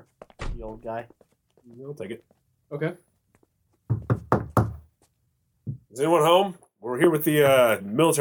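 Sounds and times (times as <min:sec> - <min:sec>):
speech: 0:00.6 - 0:03.1, 0:05.9 - 0:08.2
firm knocks on a wooden door: 0:03.9 - 0:04.9, 0:05.7 - 0:05.9.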